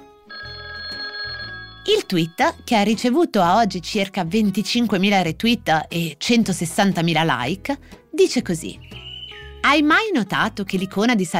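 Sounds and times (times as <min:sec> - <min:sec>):
old-fashioned telephone bell ringing: 0:00.3 - 0:02.7
speech: 0:01.8 - 0:09.0, 0:09.6 - 0:11.3.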